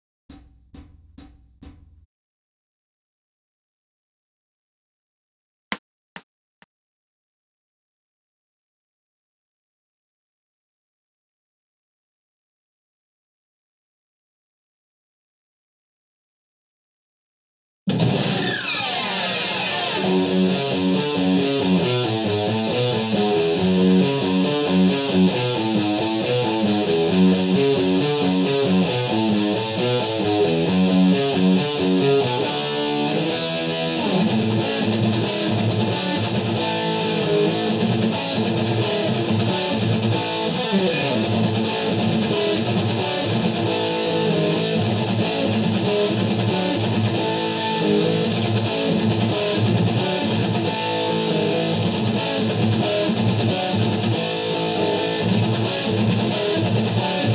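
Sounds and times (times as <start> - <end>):
guitar backing track with guitar only: 17.9 - 57.3.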